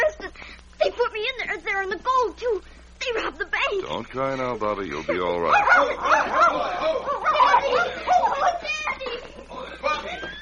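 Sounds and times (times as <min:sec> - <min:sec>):
speech: 0:01.2 - 0:08.1
laughter: 0:04.8 - 0:10.4
several dogs barking and yipping excitedly: 0:05.5 - 0:08.7.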